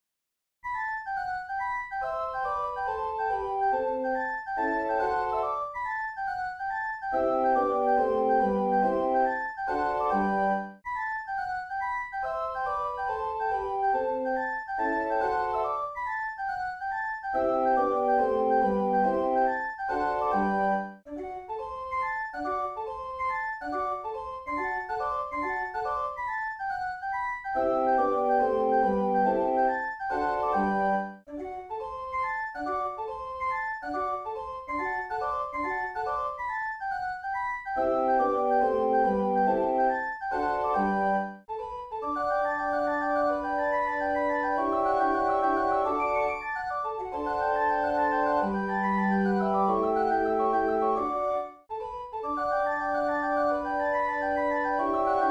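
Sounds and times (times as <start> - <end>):
flute or musical clock mechanism melody: 0.8 - 55.2.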